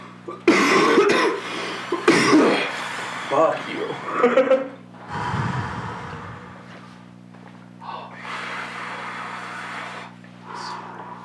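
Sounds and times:
loud harsh coughs right up against the microphone: 0:00.4 - 0:02.7
speech: 0:03.3 - 0:04.7.

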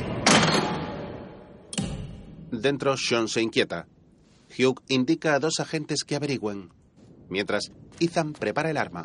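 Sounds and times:
metal bar thrown against a door: 0:00.2 - 0:02.3
hiss: 0:01.7 - 0:09.0
speech: 0:02.5 - 0:03.9, 0:04.5 - 0:09.0.

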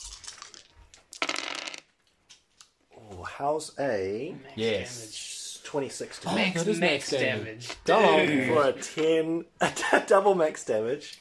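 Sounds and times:
eight-sided and six-sided dice rolled onto a table: 0:00.1 - 0:01.9
speech: 0:03.4 - 0:11.1.

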